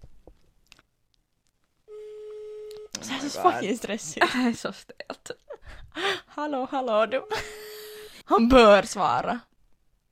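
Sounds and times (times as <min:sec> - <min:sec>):
FaceTime video call ringing tone: 0:01.9 - 0:03.6, 0:06.8 - 0:08.2
speech: 0:03.3 - 0:05.4, 0:06.4 - 0:07.6, 0:08.3 - 0:09.5.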